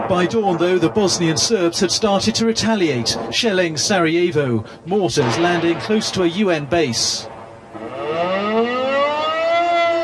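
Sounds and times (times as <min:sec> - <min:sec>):
speech: 0:00.1 - 0:07.3
warning siren wailing across a city: 0:07.7 - 0:10.0.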